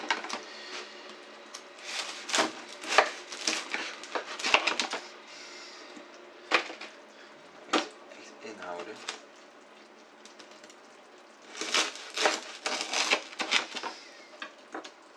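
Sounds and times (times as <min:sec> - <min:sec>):
knife sawing through pink bread rolls: 0:01.8 - 0:05.0, 0:11.5 - 0:14.2.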